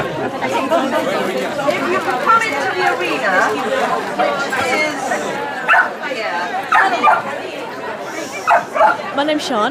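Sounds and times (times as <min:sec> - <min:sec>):
murmur of people chatting at an outdoor dog show: 0:00.0 - 0:09.6
dog barking at an outdoor dog show: 0:05.7 - 0:06.0, 0:06.7 - 0:07.3, 0:08.5 - 0:09.0
speech: 0:08.8 - 0:09.6.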